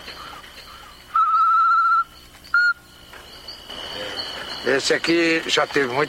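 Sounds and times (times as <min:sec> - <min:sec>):
solitary tinamou call: 0:00.7 - 0:03.0
speech: 0:04.6 - 0:06.0.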